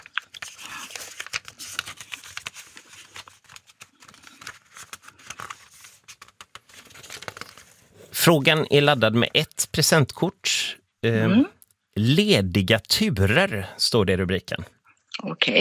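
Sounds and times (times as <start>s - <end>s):
pages flipping in a binder: 0.0s - 9.5s
speech: 8.2s - 10.4s, 11.0s - 14.8s.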